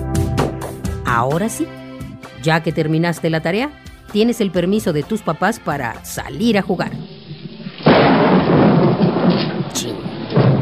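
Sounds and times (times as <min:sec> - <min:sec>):
speech: 0:01.1 - 0:01.8, 0:02.4 - 0:07.0
loud thunder rumbling: 0:06.2 - 0:10.6
steady pouring rain: 0:06.2 - 0:10.6.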